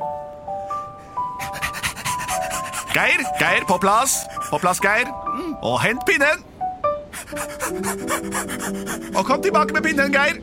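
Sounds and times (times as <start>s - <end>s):
person imitating a dog panting with whiny vocal tones: 1.4s - 4.8s, 7.2s - 9.4s
speech: 2.9s - 6.5s, 7.3s - 10.4s.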